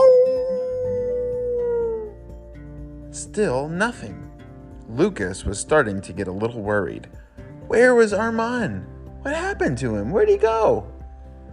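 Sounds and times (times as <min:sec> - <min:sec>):
dog howling: 0:00.0 - 0:02.2
speech: 0:03.4 - 0:04.3, 0:04.9 - 0:10.9.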